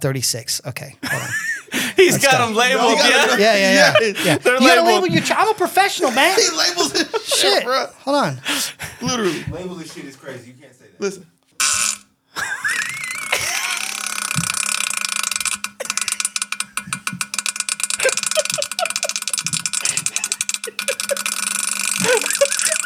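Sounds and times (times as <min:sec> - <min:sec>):
speech: 0:00.0 - 0:11.3
laughter: 0:01.0 - 0:11.2, 0:12.4 - 0:14.5, 0:18.0 - 0:22.8
long drawn-out fart: 0:11.6 - 0:12.1, 0:12.7 - 0:22.8.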